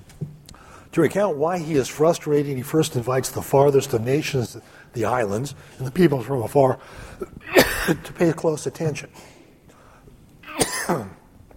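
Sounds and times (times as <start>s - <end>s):
speech: 1.0s - 9.4s
forceful cough: 7.2s - 8.2s, 10.4s - 11.2s.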